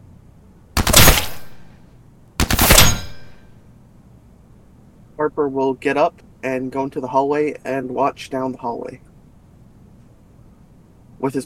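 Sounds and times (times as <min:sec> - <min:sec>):
combi rifle firing tight controlled bursts, sound effect: 0:00.8 - 0:01.7, 0:02.4 - 0:03.4
speech: 0:05.2 - 0:09.1, 0:11.2 - 0:11.4.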